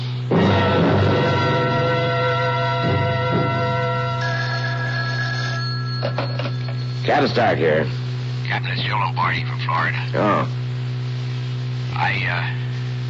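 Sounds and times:
steady low hum on the phone line: 0:00.0 - 0:13.0
telephone ringing over the line during a phone call: 0:03.7 - 0:07.8
speech: 0:07.1 - 0:10.6, 0:12.0 - 0:12.6.

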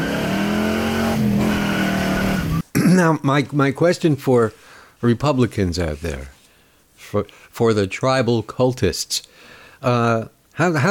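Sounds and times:
1968 428 Ford Cobra Jet V8 muscle-car engine revving: 0:00.0 - 0:02.6
speech: 0:03.0 - 0:06.4, 0:07.0 - 0:10.8.

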